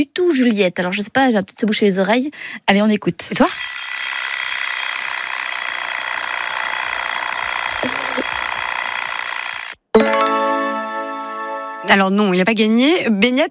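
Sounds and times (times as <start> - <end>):
speech: 0.0 - 4.0, 7.8 - 8.0, 11.9 - 13.4
alarm clock ringing in a shrill high-pitched tone: 3.5 - 11.3.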